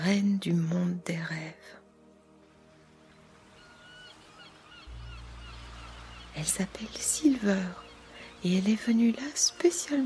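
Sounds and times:
speech: 0:00.0 - 0:01.8, 0:06.4 - 0:07.8, 0:08.4 - 0:10.0
seagulls squawking: 0:03.4 - 0:06.9.

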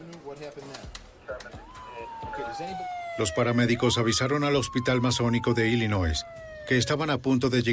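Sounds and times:
speech: 0:00.3 - 0:07.7
siren wailing from police patrol cars and an ambulance: 0:01.5 - 0:07.7.

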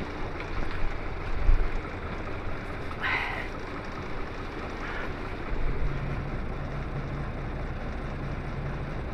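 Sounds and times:
bus diesel engine idling at about 650 rpm: 0:00.0 - 0:09.1.

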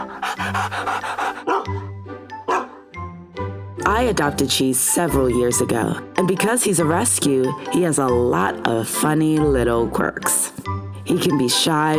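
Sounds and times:
rescue dog panting: 0:00.0 - 0:02.8
speech: 0:00.4 - 0:01.0, 0:03.9 - 0:10.5, 0:11.1 - 0:11.9.

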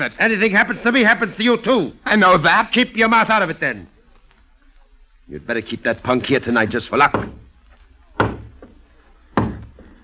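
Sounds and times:
speech: 0:00.0 - 0:04.0, 0:05.3 - 0:07.4
heavy knocking on a door: 0:07.1 - 0:07.5, 0:08.2 - 0:08.7, 0:09.4 - 0:09.8.

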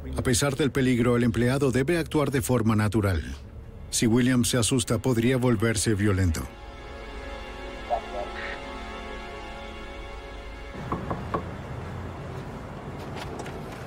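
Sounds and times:
speech: 0:00.1 - 0:06.6
knocking on a room door: 0:10.8 - 0:11.5.

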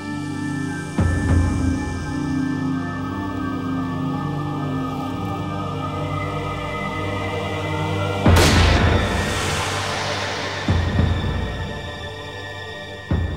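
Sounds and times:
low steady droning background: 0:00.0 - 0:13.3
single gunshot: 0:08.4 - 0:09.7.

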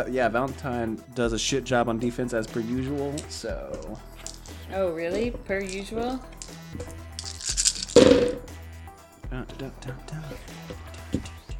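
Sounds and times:
speech: 0:00.0 - 0:07.0, 0:09.3 - 0:11.3
dice tumbling across a tabletop: 0:02.5 - 0:04.6, 0:05.6 - 0:08.4.

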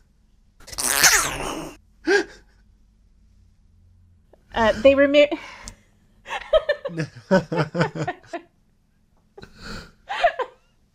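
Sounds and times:
person sneezing: 0:00.8 - 0:01.8
speech: 0:04.6 - 0:05.6, 0:06.9 - 0:08.5
laughter: 0:06.4 - 0:08.4.

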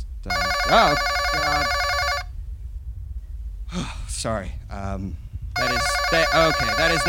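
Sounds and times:
speech: 0:00.2 - 0:01.8, 0:03.7 - 0:07.0
telephone ringing with a buzzy electronic tone: 0:00.3 - 0:02.3, 0:05.6 - 0:07.0.

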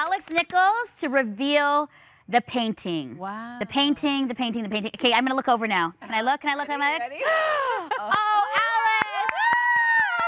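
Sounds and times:
speech: 0:00.2 - 0:08.2
several women cheering and whooping: 0:07.2 - 0:10.2
sharp claps: 0:08.1 - 0:10.2.

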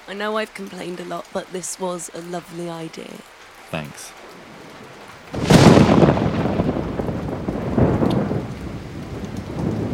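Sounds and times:
heavy rain: 0:00.0 - 0:09.9
speech: 0:00.1 - 0:04.3
loud close thunder crack: 0:04.0 - 0:09.9.

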